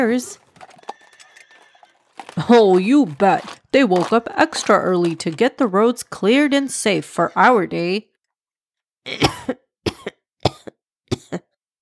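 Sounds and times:
speech: 0.0s - 0.4s, 2.4s - 8.1s, 9.0s - 9.5s
man coughing harshly: 9.1s - 11.4s.

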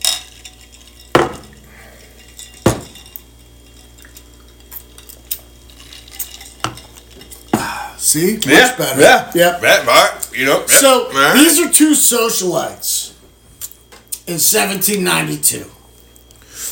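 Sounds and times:
glass clinking while whisky is mixed with Coke: 0.0s - 7.8s
stirring Canadian Hunter whisky with Coke: 0.0s - 8.8s
speech: 8.1s - 13.2s, 14.3s - 15.8s.

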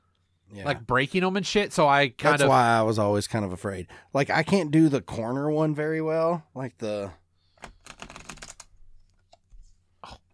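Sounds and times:
speech: 0.5s - 7.2s
deck of playing cards being shuffled: 7.6s - 8.7s.

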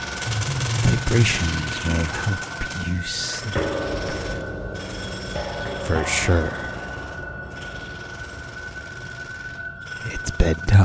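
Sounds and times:
jackhammer pounding outside a door: 0.2s - 4.4s
speech: 1.1s - 4.1s, 5.9s - 6.6s, 10.5s - 10.8s.

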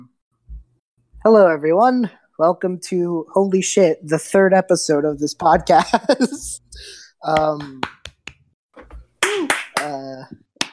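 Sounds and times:
speech: 1.2s - 8.0s
one person clapping hands: 7.3s - 8.4s, 9.2s - 10.0s, 10.6s - 10.7s.

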